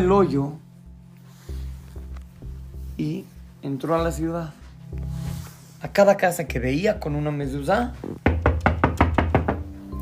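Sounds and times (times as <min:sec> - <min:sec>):
speech: 0:00.0 - 0:00.6, 0:03.0 - 0:05.2, 0:05.8 - 0:08.2
man knocking on a wooden door of a house: 0:08.2 - 0:09.7.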